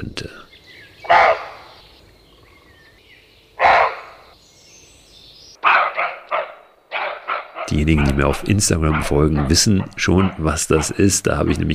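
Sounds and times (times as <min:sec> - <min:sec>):
speech: 0:00.0 - 0:00.5, 0:07.7 - 0:11.7
roe buck barking: 0:01.0 - 0:01.9, 0:03.6 - 0:04.4, 0:05.6 - 0:11.7.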